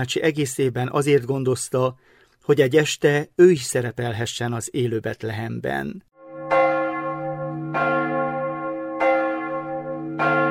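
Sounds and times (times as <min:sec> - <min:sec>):
speech: 0:00.0 - 0:06.1
church bells ringing for midnight mass: 0:06.2 - 0:10.4.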